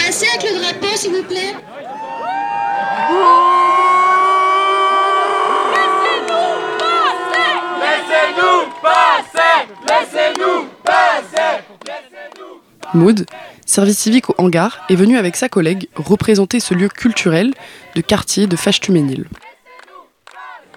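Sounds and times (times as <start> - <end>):
speech: 0.4 - 2.0, 12.9 - 19.5
crowd shouting criticism at police: 1.5 - 13.6, 16.7 - 20.7
crowd chanting in protest: 2.8 - 20.7.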